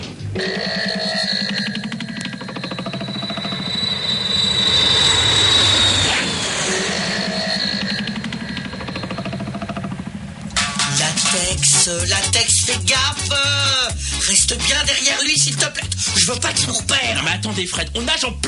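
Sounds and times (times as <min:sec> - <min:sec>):
speech: 0:00.4 - 0:00.8, 0:11.9 - 0:18.4
airplane engine droning in flight: 0:01.1 - 0:12.2.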